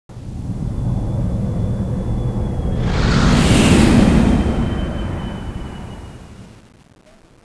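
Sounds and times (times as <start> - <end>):
mothership spaceship flyover: 0.2 - 6.6.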